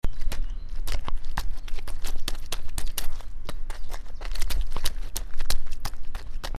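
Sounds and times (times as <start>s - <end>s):
feet squelching in mud: 0.0s - 6.5s.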